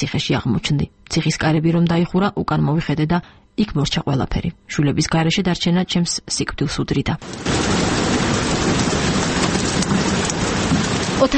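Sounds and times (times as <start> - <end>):
speech: 0.0 - 8.0, 11.2 - 11.3
rain played through a loudspeaker in a room: 7.2 - 11.3.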